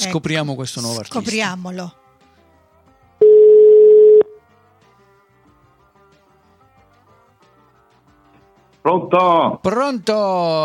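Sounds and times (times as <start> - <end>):
speech: 0.0 - 2.0, 8.8 - 10.6
telephone line tone while placing a call: 3.2 - 4.4.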